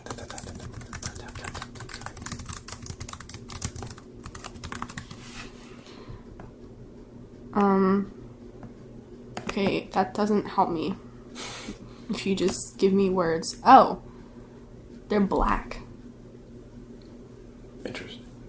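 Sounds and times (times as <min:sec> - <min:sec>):
computer keyboard clacking: 0:00.0 - 0:05.2
speech: 0:07.6 - 0:08.2, 0:09.6 - 0:11.1, 0:12.1 - 0:14.1, 0:15.1 - 0:15.8.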